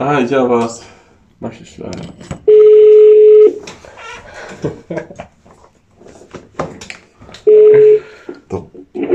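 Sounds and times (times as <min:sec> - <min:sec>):
speech: 0:00.2 - 0:02.5, 0:04.5 - 0:05.3
phone ringback tone over a speakerphone: 0:02.5 - 0:03.6, 0:07.5 - 0:08.0.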